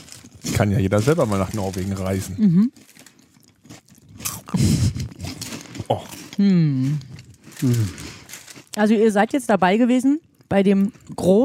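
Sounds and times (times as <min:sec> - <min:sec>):
crinkly plastic bag of Norwegian candy torn open: 0:00.0 - 0:09.0
speech: 0:00.5 - 0:03.0, 0:06.4 - 0:08.1, 0:08.8 - 0:11.4.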